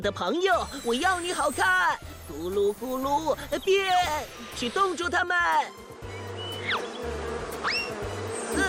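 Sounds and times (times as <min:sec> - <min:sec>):
speech: 0:00.0 - 0:05.9
bees buzzing: 0:00.7 - 0:08.6
rising swooping whistle-like effects: 0:06.2 - 0:07.0, 0:07.6 - 0:08.6.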